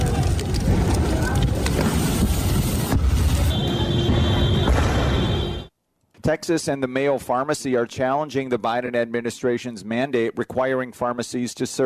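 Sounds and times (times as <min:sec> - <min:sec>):
roaring street din with crowd noise: 0:00.0 - 0:05.7
explosions during street clashes: 0:01.5 - 0:05.7
speech: 0:06.3 - 0:11.8.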